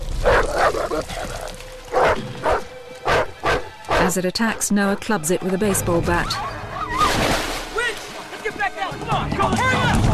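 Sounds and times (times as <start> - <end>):
dogs barking and yelping: 0.1 - 4.1, 6.2 - 7.2
speech: 4.1 - 6.5, 8.9 - 10.0.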